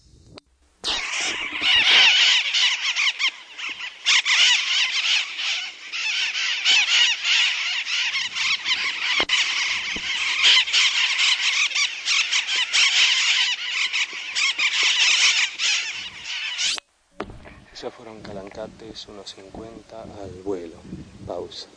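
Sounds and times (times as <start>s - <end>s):
blue-crowned parakeet Thectocercus acuticaudatus calling: 0.8s - 16.9s.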